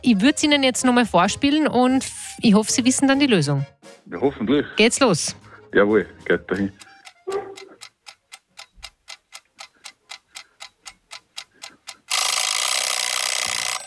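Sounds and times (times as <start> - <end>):
speech: 0.0 - 6.9
mechanical egg timer ticking: 6.6 - 13.8
egg timer loud continuous rattling ring: 11.9 - 13.8.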